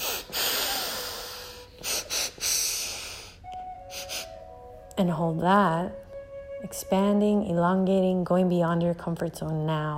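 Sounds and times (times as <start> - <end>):
sharp sniffing inhales through the nose during a breathing exercise: 0.0 - 4.3
speech: 5.0 - 6.0, 6.6 - 9.9.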